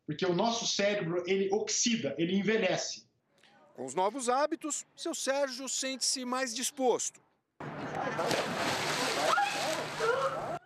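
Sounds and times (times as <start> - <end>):
speech: 0.1 - 3.1, 3.8 - 7.3, 8.0 - 9.4
cold winter water splashing and sloshing in São Paulo state: 8.0 - 10.6.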